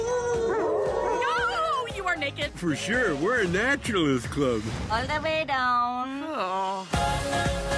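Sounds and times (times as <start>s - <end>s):
dog howling: 0.0s - 1.7s
speech: 2.6s - 7.6s.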